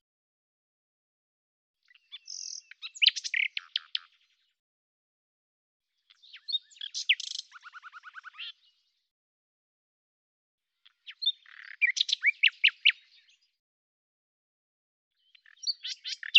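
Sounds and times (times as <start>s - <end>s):
Common nightingale song: 1.8s - 4.6s, 5.9s - 9.1s, 10.7s - 13.6s, 15.1s - 16.3s.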